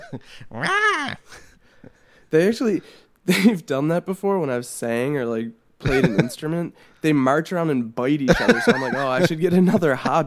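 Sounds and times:
laughter: 0.0s - 2.0s, 5.8s - 6.4s, 8.3s - 10.2s
speech: 0.1s - 10.2s
excited house cat yowling: 0.6s - 1.2s.

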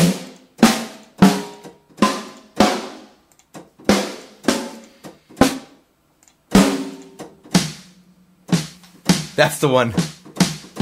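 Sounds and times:
snare drum hits played alone: 0.0s - 3.1s, 3.9s - 4.8s, 5.4s - 5.8s, 6.6s - 10.8s
speech: 9.4s - 10.1s.

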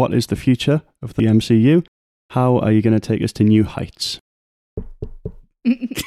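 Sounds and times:
speech: 0.0s - 4.2s, 4.8s - 6.0s
firm knocks on a door: 4.8s - 5.5s.

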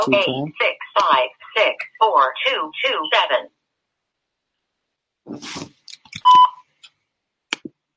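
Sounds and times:
speech: 0.0s - 3.6s, 5.3s - 6.4s
voicemail beep: 6.2s - 6.6s.

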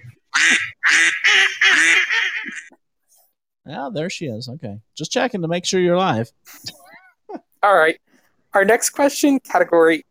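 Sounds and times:
duck quacking: 0.3s - 2.7s
speech: 0.4s - 2.3s, 3.7s - 6.8s, 7.6s - 10.0s.

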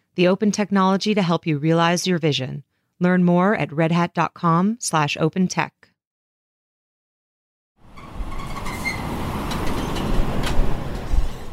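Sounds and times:
speech: 0.2s - 5.9s
broad road rumble in a truck cab on a highway: 7.8s - 11.5s
steady low truck engine drone on a highway: 7.8s - 11.5s.

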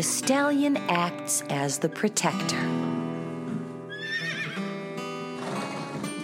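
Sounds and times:
speech: 0.0s - 2.9s
horse snorting: 2.8s - 6.2s
horse whinnying: 3.2s - 6.2s.

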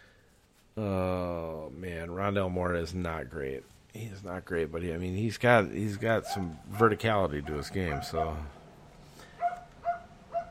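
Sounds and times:
speech: 0.8s - 8.6s
dog barking: 6.2s - 8.6s, 9.4s - 10.4s.

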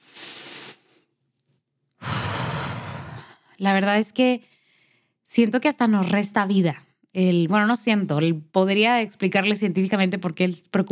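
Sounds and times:
full exhale through the mouth during a guided breathing exercise: 0.0s - 1.1s, 2.0s - 3.5s
soft airy inhale through the nose during a guided breathing exercise: 0.0s - 1.1s, 2.0s - 3.5s
speech: 3.6s - 4.5s, 5.3s - 10.9s.

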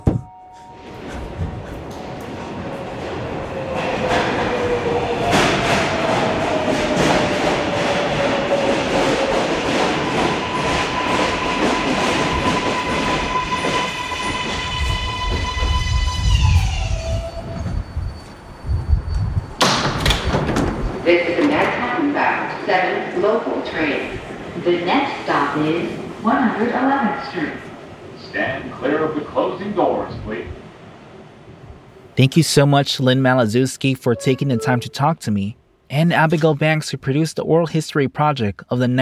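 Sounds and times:
subway train pulling into a station: 0.0s - 32.4s
speech: 32.2s - 39.0s.

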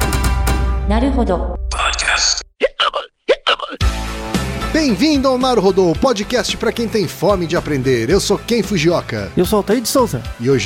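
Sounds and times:
music: 0.0s - 1.6s, 3.8s - 10.6s
speech: 0.9s - 1.6s, 4.8s - 10.6s
sharp voiced hiccups: 1.9s - 3.8s.

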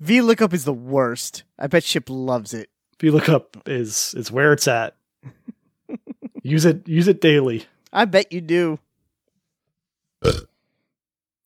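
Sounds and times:
speech: 0.0s - 8.8s, 10.2s - 10.5s
laughter: 5.2s - 6.8s
burp: 10.2s - 10.6s.

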